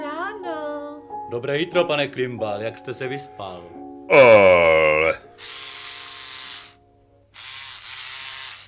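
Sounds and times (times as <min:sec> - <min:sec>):
speech: 0:01.3 - 0:05.2
malfunctioning electric shaver buzzing and sputtering: 0:05.4 - 0:06.8, 0:07.4 - 0:08.6.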